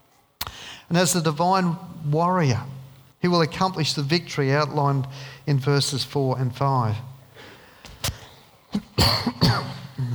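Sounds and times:
speech: 0.9s - 7.1s, 9.0s - 9.6s
person coughing into a microphone: 8.7s - 10.1s.

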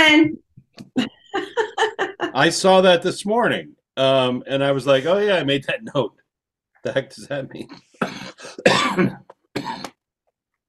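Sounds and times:
speech: 0.2s - 0.4s, 2.4s - 6.2s, 6.8s - 9.8s
laughter: 1.0s - 2.7s
person coughing: 8.0s - 10.0s.

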